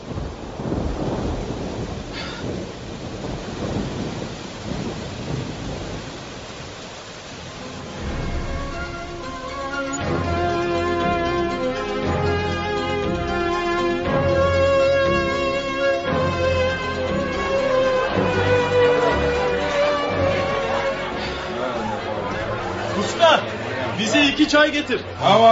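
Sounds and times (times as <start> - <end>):
deep rumbling: 0.0 - 24.0
heavy rain pouring: 0.0 - 25.5
tonal musical swell: 7.6 - 24.0
speech: 24.6 - 25.5.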